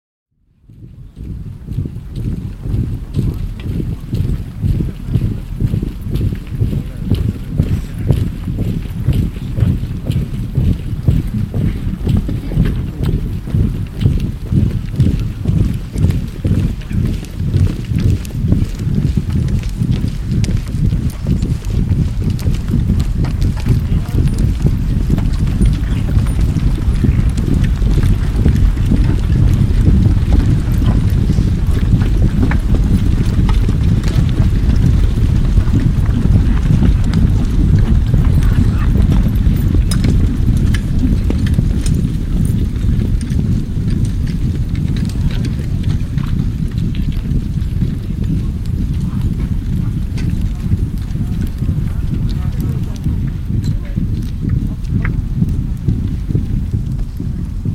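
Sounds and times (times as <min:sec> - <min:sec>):
cavalry horses passing by: 0:00.7 - 0:57.7
marching infantry passing by: 0:00.8 - 0:57.7.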